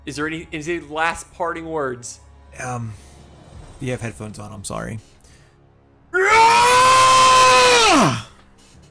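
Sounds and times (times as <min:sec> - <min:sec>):
speech: 0:00.0 - 0:03.1, 0:03.8 - 0:05.1, 0:07.9 - 0:08.3
loud sustained scream of a dying character as its neck is ripped out: 0:06.2 - 0:08.3.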